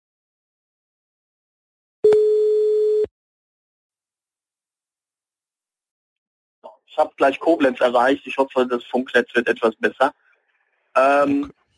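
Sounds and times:
telephone tone while placing a call: 2.0 - 3.1
speech: 6.9 - 10.2, 11.0 - 11.6.

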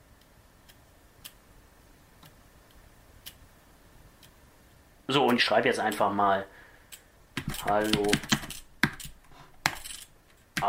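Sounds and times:
soft regular ticking from a braille device's blinking cursor: 0.0 - 1.6, 2.2 - 6.2, 6.8 - 10.6
quiet hiss: 0.0 - 10.6
speech: 5.1 - 6.6, 7.6 - 8.4.

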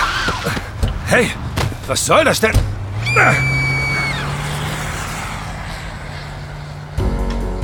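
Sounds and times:
car engine droning as the vehicle rounds a corner: 0.0 - 7.6
speech: 1.1 - 3.5
brief high squeal: 3.1 - 4.3.

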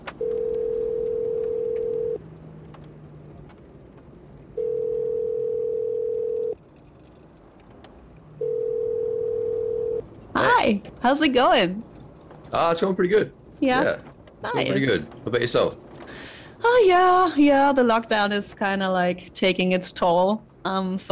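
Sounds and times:
outgoing cell phone call ringing tone from inside a car: 0.2 - 2.2, 4.6 - 6.6, 8.4 - 10.0
speech: 10.7 - 11.9, 12.5 - 15.8, 16.6 - 21.1.

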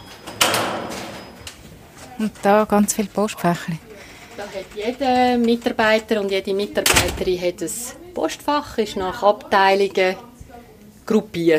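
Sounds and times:
office door releasing and swinging open with a sharp clunk: 0.0 - 1.6, 6.8 - 7.3
speech: 2.2 - 10.3, 11.1 - 11.5.

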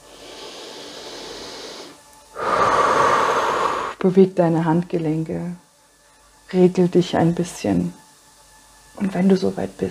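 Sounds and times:
people breathing in and out together during guided meditation: 0.0 - 4.0
speech: 4.0 - 5.6, 6.5 - 8.0, 9.0 - 9.8.

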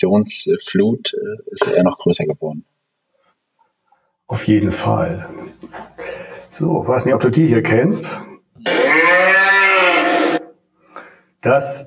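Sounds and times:
speech: 0.0 - 2.7, 4.3 - 8.8, 11.4 - 11.8
cow mooing: 8.6 - 10.5.

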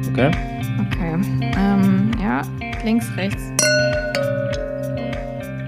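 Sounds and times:
speech: 0.2 - 4.1
full beer bottle clinking against a wine glass: 3.6 - 5.6.

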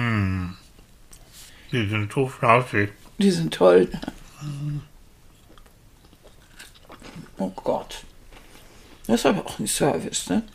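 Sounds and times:
speech: 1.7 - 4.9, 7.4 - 8.1, 9.1 - 10.5
person chewing crunchy vanilla crescent cookies: 3.9 - 9.1.

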